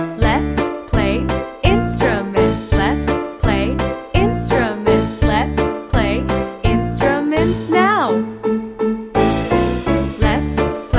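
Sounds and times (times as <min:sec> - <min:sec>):
instruments playing: 0:00.2 - 0:10.8.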